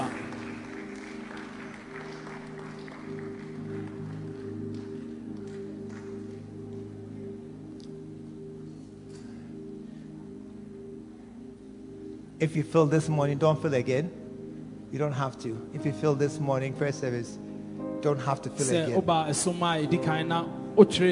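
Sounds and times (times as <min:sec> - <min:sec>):
church audience at a morning service applauding: 0:00.0 - 0:06.3
sustained low musical drone: 0:00.0 - 0:21.1
speech: 0:12.4 - 0:14.2, 0:14.9 - 0:21.1.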